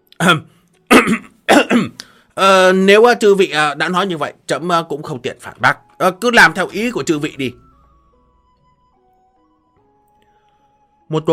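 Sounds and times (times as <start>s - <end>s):
speech: 0.2s - 1.3s, 2.4s - 7.6s, 11.1s - 11.3s
dry coughs or throat-clearing: 0.2s - 2.0s.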